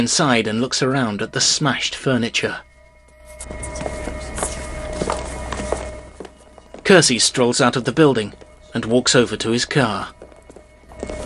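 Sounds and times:
speech: 0:00.0 - 0:02.7, 0:03.4 - 0:03.9, 0:06.9 - 0:10.2
steady hum: 0:00.0 - 0:11.2
footsteps of a man running down a corridor: 0:03.0 - 0:11.2.

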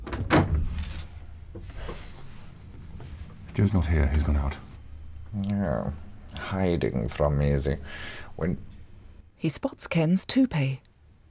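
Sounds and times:
door swinging open with low rumbling and soft knocks: 0:00.0 - 0:02.0
speech: 0:03.6 - 0:08.7, 0:09.4 - 0:10.9.

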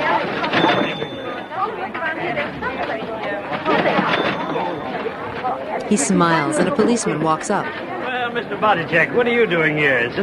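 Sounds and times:
dense crowd chatter on a busy sidewalk: 0:00.0 - 0:10.2
speech: 0:05.9 - 0:10.2.

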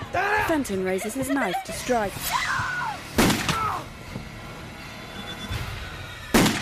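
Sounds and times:
speech: 0:00.1 - 0:02.6
gunshots fired from a bedroom doorway: 0:03.1 - 0:03.8, 0:06.3 - 0:06.6.

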